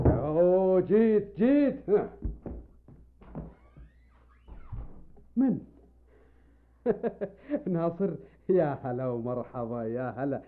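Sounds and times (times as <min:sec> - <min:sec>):
speech: 0:00.8 - 0:02.3, 0:05.4 - 0:05.7, 0:06.8 - 0:10.4
knocking on a door: 0:02.2 - 0:02.8.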